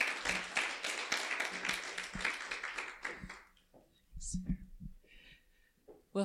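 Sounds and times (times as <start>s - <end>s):
audience clapping: 0.0s - 3.7s.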